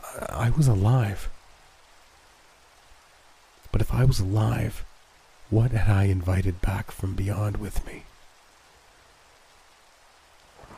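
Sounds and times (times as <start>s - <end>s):
steady dense rain: 0.0s - 10.7s
speech: 0.4s - 1.3s, 3.8s - 4.9s, 5.5s - 8.1s
low rumbling thunder: 10.5s - 10.7s.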